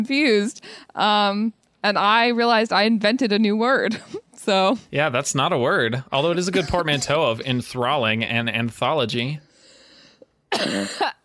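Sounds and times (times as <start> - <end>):
speech: 0.0 - 9.4, 10.5 - 11.2
breath: 0.6 - 1.0, 9.4 - 10.4
person coughing into a microphone: 6.2 - 7.2, 10.5 - 11.2
laughter: 6.2 - 7.8.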